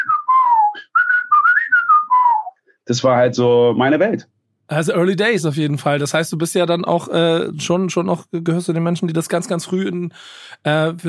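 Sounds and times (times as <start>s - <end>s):
person whistling a melody imitating the whistling on a record: 0.0s - 2.6s
speech: 2.9s - 11.0s.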